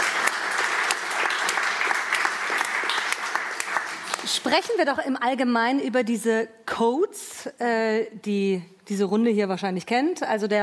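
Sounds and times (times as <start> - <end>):
crowd applauding: 0.0 - 4.6
speech: 4.3 - 10.6.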